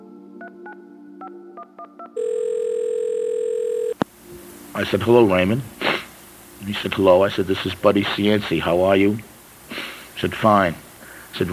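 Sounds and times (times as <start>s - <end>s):
telephone ringing tone on the line: 2.2s - 4.0s
speech: 4.7s - 5.8s, 6.6s - 10.8s, 11.4s - 11.5s.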